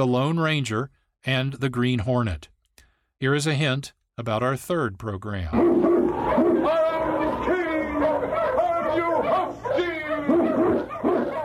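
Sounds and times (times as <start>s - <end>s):
speech: 0.0s - 2.5s, 3.2s - 5.9s
pack of sled dogs barking and yelping excitedly: 5.6s - 11.4s.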